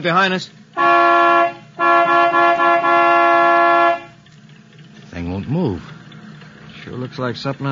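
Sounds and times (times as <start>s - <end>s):
speech: 0.0s - 1.0s, 5.4s - 6.0s, 6.9s - 7.7s
truck horn honking: 0.8s - 4.3s.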